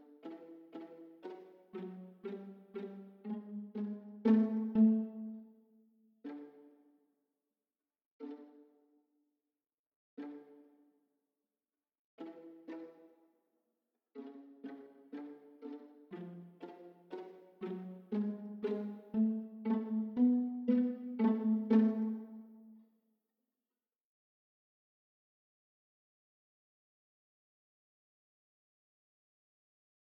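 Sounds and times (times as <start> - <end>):
cellos playing: 0.3 - 5.5, 14.4 - 22.7.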